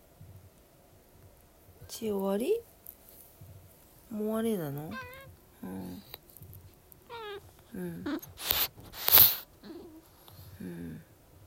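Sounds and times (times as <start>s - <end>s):
speech: 1.9s - 2.7s, 4.1s - 6.1s, 7.7s - 8.6s
soft short chirping vocal sounds: 4.6s - 6.3s, 7.0s - 11.0s
cat sneezing: 4.9s - 5.3s, 8.0s - 10.0s.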